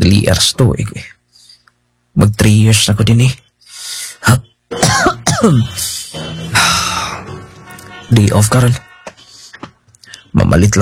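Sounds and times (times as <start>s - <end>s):
speech: 0.0s - 1.2s, 2.2s - 3.4s, 4.3s - 7.1s, 8.1s - 8.8s, 10.4s - 10.8s
person coughing: 4.7s - 6.0s.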